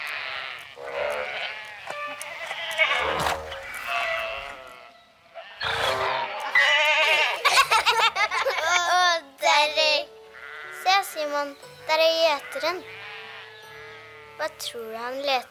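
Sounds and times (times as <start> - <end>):
sheep bleating in an open field: 0.0 - 7.5, 10.4 - 11.1, 12.4 - 14.4
laughter: 7.2 - 8.9
speech: 11.4 - 13.0, 14.4 - 15.5.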